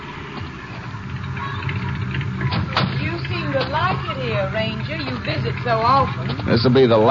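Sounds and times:
car engine of an approaching car rumbling: 0.0s - 7.0s
rising mechanical whines: 0.0s - 7.0s
speech: 3.7s - 7.0s.

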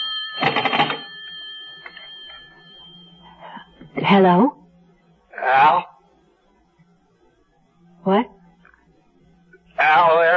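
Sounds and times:
telephone bell ringing in a rattling burst: 0.0s - 3.9s
speech: 4.0s - 4.6s, 5.5s - 5.9s, 8.0s - 8.3s.

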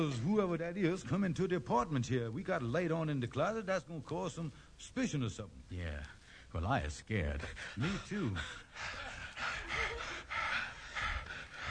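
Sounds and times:
speech: 0.0s - 9.0s
heavy rapid panting breaths in the dark: 7.2s - 11.7s.

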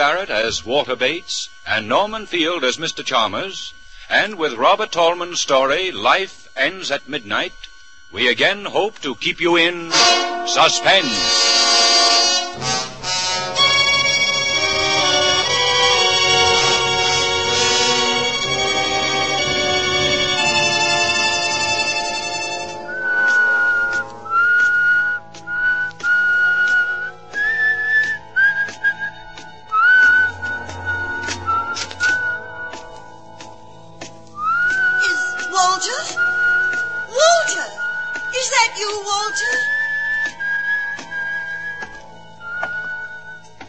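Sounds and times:
low steady hum: 0.0s - 43.6s
speech: 0.1s - 11.7s
person whistling a tune: 22.9s - 33.0s, 34.4s - 38.4s, 39.1s - 43.6s.

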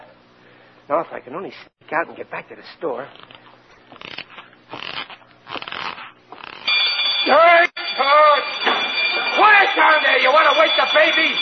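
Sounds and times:
speech: 0.9s - 3.3s, 7.3s - 7.6s, 10.3s - 11.3s
burglar alarm bell ringing: 6.6s - 11.3s.

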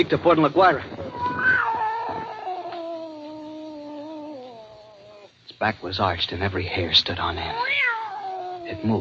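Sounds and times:
speech: 0.0s - 1.2s, 5.6s - 8.0s, 8.7s - 8.9s
cat yowling in a long wavering wail: 1.1s - 5.4s, 7.4s - 8.9s.

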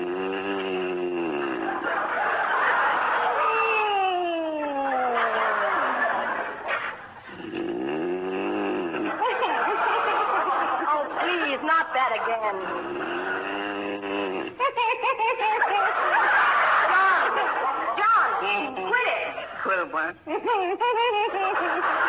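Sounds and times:
man snoring loudly in bed: 0.0s - 1.8s, 7.3s - 9.1s, 12.7s - 14.5s
laughter: 1.3s - 7.0s, 8.7s - 22.0s
speech: 20.2s - 21.4s.

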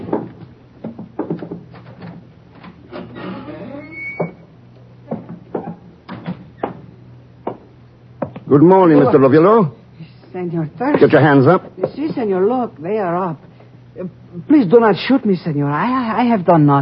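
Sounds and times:
door scraping creak: 0.0s - 6.9s
speech: 8.5s - 13.4s, 14.0s - 16.8s.

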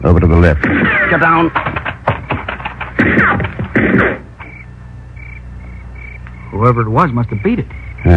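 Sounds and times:
speech: 0.1s - 1.8s, 3.2s - 4.2s, 6.5s - 8.1s
loud gunshots: 0.4s - 4.4s
sharp clicking taps: 1.5s - 4.6s.

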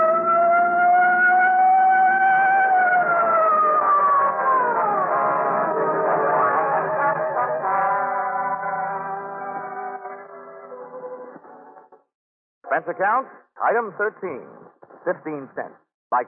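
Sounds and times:
police patrol car siren wailing: 0.0s - 11.4s
speech: 12.8s - 16.2s.

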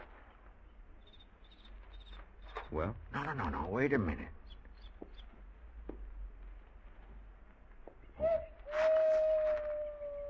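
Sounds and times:
low rumbling night background: 0.0s - 10.2s
speech: 2.7s - 4.4s
owl hooting: 8.2s - 10.2s.

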